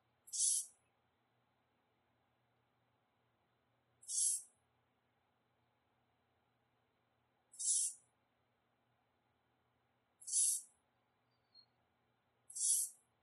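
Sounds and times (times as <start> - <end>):
fledgling saw-whet owl food begging: 0.3 - 0.8, 4.0 - 4.5, 7.5 - 8.0, 10.2 - 10.7, 12.5 - 13.0.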